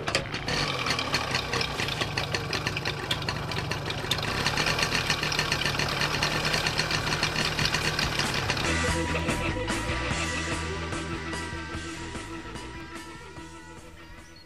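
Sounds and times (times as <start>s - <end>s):
fully original vintage moped engine sputtering to life and idling: 0.0s - 14.1s.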